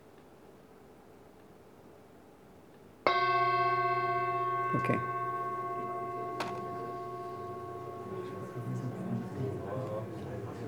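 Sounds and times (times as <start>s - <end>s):
single metallic bell struck to start practice: 3.1s - 10.6s
speech: 4.7s - 5.2s.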